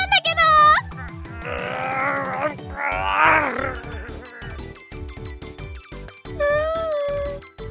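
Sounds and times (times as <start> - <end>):
steady music track: 0.0 - 7.7
person growling and snarling like a dog, portrayed as a werewolf: 1.2 - 4.7
high whining voice: 1.4 - 4.7.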